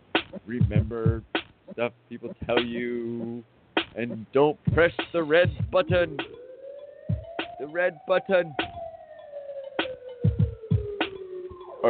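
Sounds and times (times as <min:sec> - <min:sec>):
song beat of deep kick drums and sharp snare hits: 0:00.0 - 0:01.7, 0:02.4 - 0:04.1, 0:04.7 - 0:06.4, 0:07.1 - 0:07.6, 0:09.8 - 0:11.6
speech: 0:00.5 - 0:06.3, 0:07.6 - 0:08.6
siren wail falling in pitch: 0:05.3 - 0:11.8.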